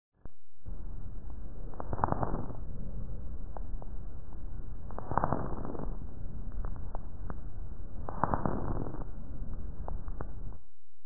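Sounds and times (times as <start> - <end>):
adult crackles: 0.1 - 10.8.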